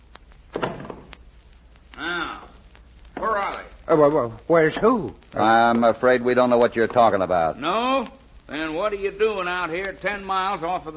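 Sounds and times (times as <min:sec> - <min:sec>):
door thudding shut: 0:00.5 - 0:01.1
speech: 0:03.9 - 0:10.9.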